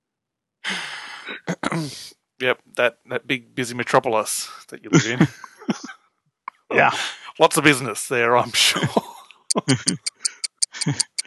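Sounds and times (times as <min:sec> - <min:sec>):
speech: 0:00.7 - 0:05.9, 0:06.7 - 0:10.1, 0:10.8 - 0:11.1
laughter: 0:04.4 - 0:05.9, 0:06.7 - 0:07.5, 0:08.3 - 0:10.1, 0:10.8 - 0:11.2
clock ticking in a policeman's house: 0:09.3 - 0:11.2.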